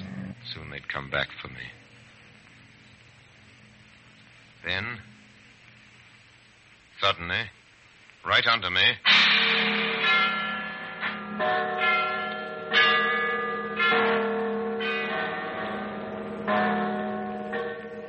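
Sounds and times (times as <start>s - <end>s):
speech: 0.5s - 1.8s, 4.6s - 5.1s, 7.0s - 7.6s, 8.2s - 9.8s, 11.4s - 11.9s
bells ringing in a peal: 9.1s - 18.0s.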